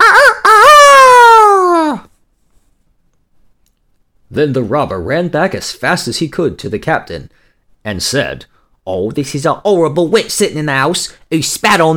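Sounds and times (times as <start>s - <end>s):
human voice imitating a rooster crowing from a beam: 0.0s - 2.1s
speech: 4.4s - 11.9s.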